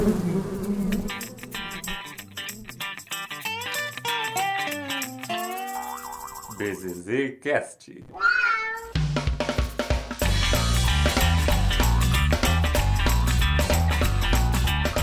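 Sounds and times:
blues band music with drums and bass: 0.9s - 6.7s, 8.9s - 15.0s
speech: 6.6s - 8.4s
cat meowing: 8.1s - 9.0s.

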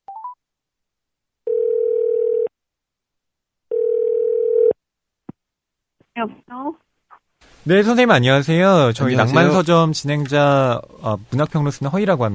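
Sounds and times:
telephone ringback tone while a call connects: 1.5s - 2.5s, 3.7s - 4.8s
speech: 6.2s - 6.9s, 7.6s - 12.3s.

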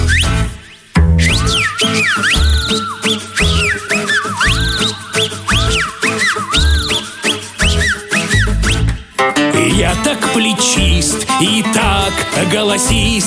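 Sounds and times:
loud shrill melodic whistling: 0.0s - 10.3s
bouncy musical backing with a steady bass beat: 0.0s - 13.2s
speech: 2.2s - 3.0s, 12.4s - 13.2s.

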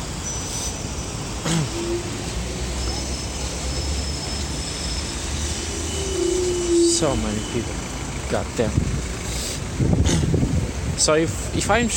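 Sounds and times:
traffic rumble of passing vehicles during a commute: 0.0s - 11.9s
vehicle whooshing past: 2.0s - 9.4s
speech: 7.0s - 8.9s, 9.8s - 11.9s.

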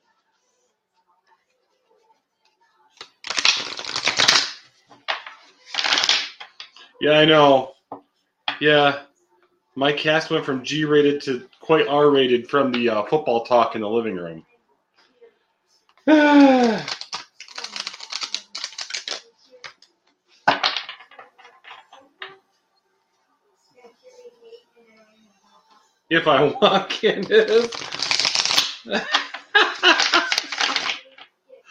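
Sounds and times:
deck of cards being shuffled: 3.0s - 6.8s, 16.2s - 19.9s, 27.1s - 31.3s
speech: 7.0s - 7.7s, 8.6s - 9.1s, 9.8s - 14.5s, 16.0s - 16.9s, 26.1s - 28.0s, 28.8s - 29.2s
person laughing: 26.4s - 27.8s, 28.9s - 30.9s.

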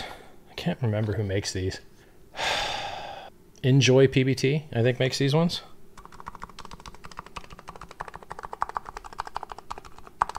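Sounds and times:
speech: 0.6s - 1.9s, 3.6s - 5.7s
typing on a mechanical keyboard with deep muted thocks: 6.0s - 10.3s.

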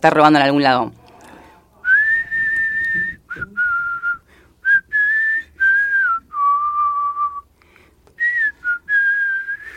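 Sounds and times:
speech: 0.0s - 1.0s
person whistling a song melody: 1.8s - 7.5s, 8.2s - 9.7s.

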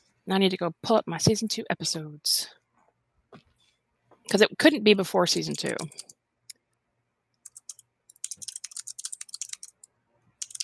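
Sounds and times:
speech: 0.3s - 2.6s, 4.3s - 6.1s
typing on a computer keyboard: 5.5s - 6.2s, 7.4s - 10.6s.

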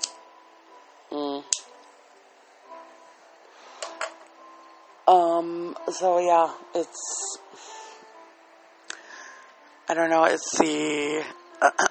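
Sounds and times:
lighter clicking while lighting a cigarette: 0.0s - 0.2s, 1.5s - 1.9s
speech: 5.4s - 7.4s, 9.9s - 11.8s.

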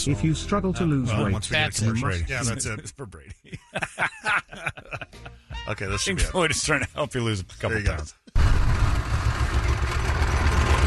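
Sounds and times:
speech: 0.0s - 8.6s
laughter: 1.9s - 7.3s
tractor engine idling: 8.4s - 10.8s.

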